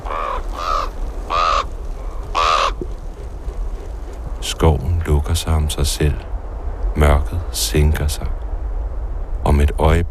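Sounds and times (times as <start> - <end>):
raven calling while flying over treetops: 0.0 - 4.2
speech: 4.6 - 6.3, 7.0 - 8.4, 9.5 - 10.1.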